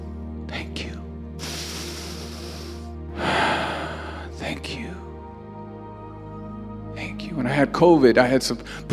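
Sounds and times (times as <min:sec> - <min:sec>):
deep breath in and out: 0:01.4 - 0:04.4
speech: 0:07.5 - 0:08.9.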